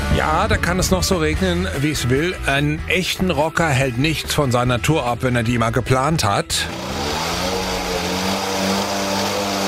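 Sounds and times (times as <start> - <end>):
speech: 0.2 - 7.0
several moped engines droning and revving: 6.5 - 9.6.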